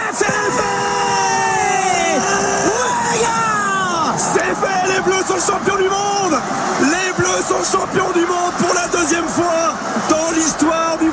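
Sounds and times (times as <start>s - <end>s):
large crowd cheering and shouting jubilantly: 0.0s - 11.1s
speech: 5.0s - 6.8s, 7.5s - 9.9s.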